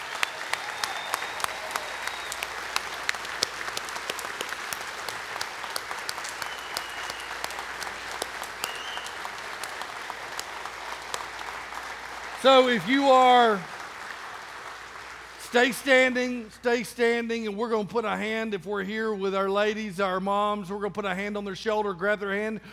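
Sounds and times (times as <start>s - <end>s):
large crowd applauding in a reverberant room: 0.0s - 16.8s
speech: 12.4s - 13.8s, 15.5s - 22.7s.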